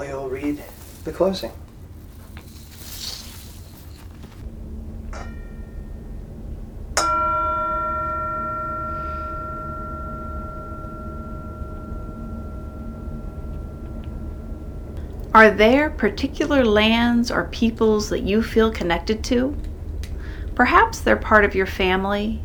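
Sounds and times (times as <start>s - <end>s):
speech: 0.0s - 1.6s, 15.5s - 19.7s, 20.6s - 22.4s
meditation bell struck and ringing: 4.4s - 17.0s.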